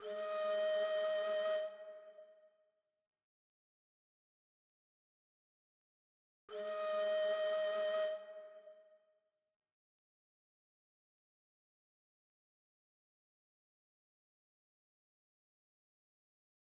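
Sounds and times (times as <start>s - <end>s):
flute melody in G sharp minor at 148 BPM: 0.0s - 2.4s, 6.5s - 8.9s.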